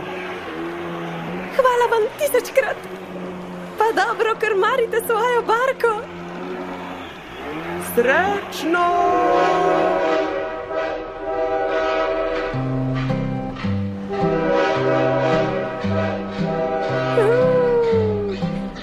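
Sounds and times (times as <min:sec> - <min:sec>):
steam train multi-tone horn blaring: 0:00.0 - 0:18.8
speech: 0:01.6 - 0:03.0, 0:03.9 - 0:06.2, 0:08.0 - 0:09.9.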